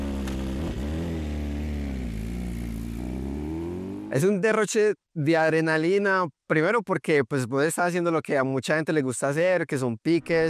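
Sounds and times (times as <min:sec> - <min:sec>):
motorcycle engine revving: 0:00.0 - 0:04.2
speech: 0:04.1 - 0:10.4.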